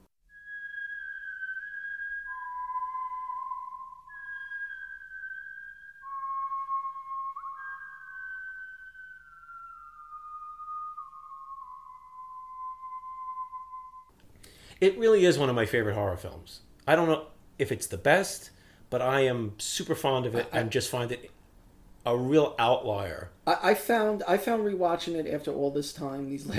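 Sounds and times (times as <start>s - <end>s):
whistled haunting film theme melody: 0.2s - 14.2s
speech: 14.8s - 21.3s, 22.0s - 26.5s.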